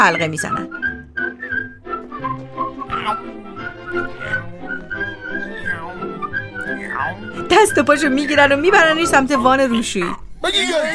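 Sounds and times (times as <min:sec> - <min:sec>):
speech: 0:00.0 - 0:00.8, 0:03.1 - 0:04.9, 0:06.8 - 0:10.9
group of dwarves whistling a tune as they walk: 0:00.0 - 0:02.9, 0:03.6 - 0:06.8.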